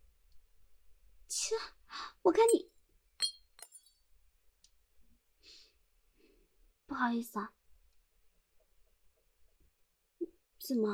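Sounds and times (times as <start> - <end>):
speech: 1.3 - 2.7, 7.0 - 7.6, 10.6 - 10.9
falling wine glass shards tinkling: 3.2 - 3.9
wine glass shattering: 3.2 - 3.9.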